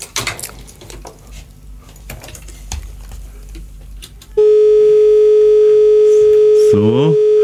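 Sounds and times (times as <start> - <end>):
telephone line tone during a phone line test: 4.4 - 7.4
speech: 6.8 - 7.2.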